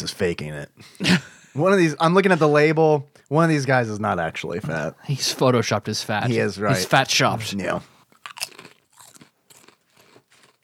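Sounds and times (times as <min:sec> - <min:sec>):
speech: 0:00.1 - 0:07.9
crispy barbecue snack being bitten and chewed: 0:08.2 - 0:10.6.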